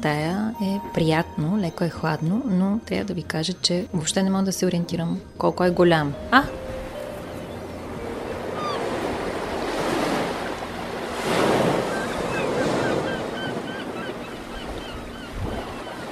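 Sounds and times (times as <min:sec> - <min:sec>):
speech: 0:00.0 - 0:06.6
ocean surf rolling and breaking: 0:06.1 - 0:16.0
seagull cries over the water: 0:06.8 - 0:09.3, 0:11.5 - 0:16.0.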